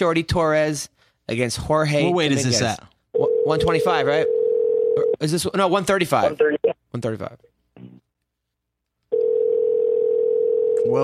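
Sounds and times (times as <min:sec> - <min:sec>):
speech: 0:00.0 - 0:04.4, 0:05.2 - 0:07.9, 0:10.8 - 0:11.0
electronic telephone ringback tone: 0:04.3 - 0:05.1, 0:09.1 - 0:11.0.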